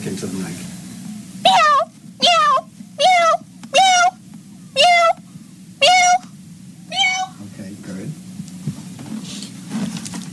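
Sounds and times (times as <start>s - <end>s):
low steady hum: 0.0s - 10.3s
speech: 0.2s - 0.8s
person imitating cat meows: 1.5s - 4.2s, 4.8s - 5.2s, 5.8s - 6.3s, 6.9s - 7.4s.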